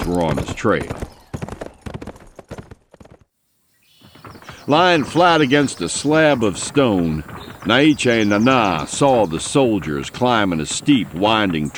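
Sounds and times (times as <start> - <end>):
horse hooves galloping: 0.0 - 11.7
speech: 0.1 - 1.2, 4.7 - 11.7
faint ambience: 3.6 - 11.7.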